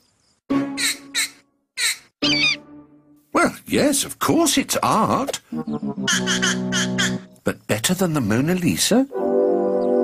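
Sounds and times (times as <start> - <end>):
baby bird squawking: 0.8 - 2.6, 6.1 - 7.3
speech: 3.7 - 9.2.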